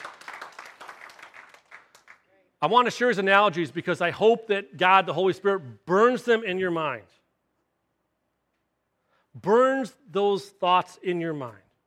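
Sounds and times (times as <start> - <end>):
faint applause from a group at a sermon: 0.0 - 2.5
speech: 2.6 - 7.2, 9.4 - 11.6.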